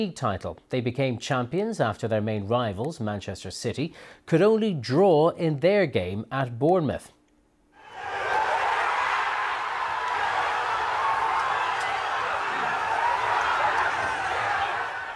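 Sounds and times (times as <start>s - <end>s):
speech: 0.0s - 7.2s
packed room of football fans cheering and shouting: 7.8s - 15.1s.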